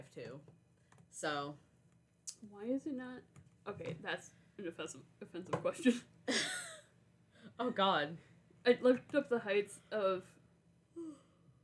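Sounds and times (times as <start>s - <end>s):
speech: 0.2s - 1.7s, 2.3s - 6.5s, 7.6s - 10.4s
short soft yawn from a sleepy speaker: 10.9s - 11.4s.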